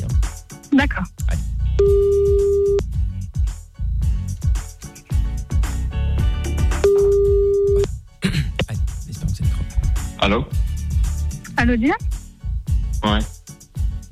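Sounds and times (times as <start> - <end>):
music: 0.0 - 14.1
speech: 0.8 - 1.2, 11.7 - 12.1
ringing tone of an outgoing telephone call: 6.9 - 7.8.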